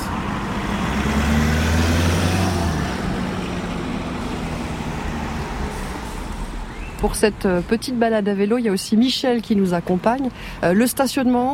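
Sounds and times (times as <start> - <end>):
car engine humming as it passes: 0.0 - 11.5
steady city traffic noise: 0.0 - 11.5
speech: 7.0 - 11.5.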